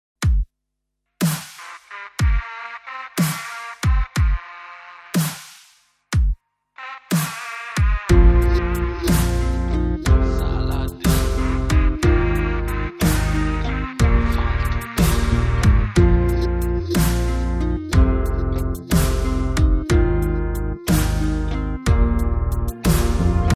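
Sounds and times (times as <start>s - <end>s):
drum beats: 0.2s - 0.5s, 1.2s - 4.5s, 5.2s - 6.4s, 7.1s - 23.5s.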